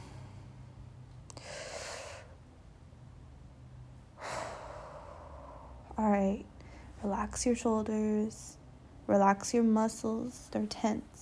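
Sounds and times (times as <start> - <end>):
slow deep breaths drawn while settling in to relax: 0.0 - 2.4, 4.1 - 7.0
faint low hum: 0.0 - 11.2
speech: 6.1 - 6.5, 7.1 - 11.2.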